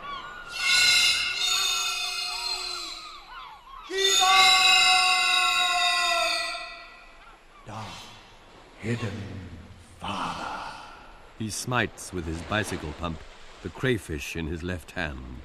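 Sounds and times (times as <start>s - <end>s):
storm birds wailing calls: 0.0s - 8.3s
speech: 8.8s - 10.4s, 11.4s - 15.4s.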